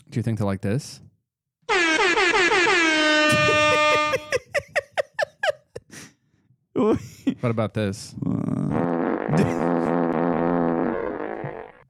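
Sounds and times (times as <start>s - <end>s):
speech: 0.2s - 1.1s, 6.8s - 9.9s
buzzy fart-like air horn blast: 1.7s - 4.3s, 8.8s - 11.8s
laughter: 3.3s - 5.9s.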